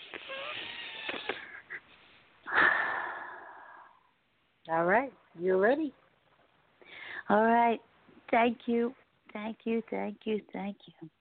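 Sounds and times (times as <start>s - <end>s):
deep breath: 2.4s - 4.1s, 6.8s - 7.3s
speech: 4.7s - 6.0s, 7.3s - 11.1s.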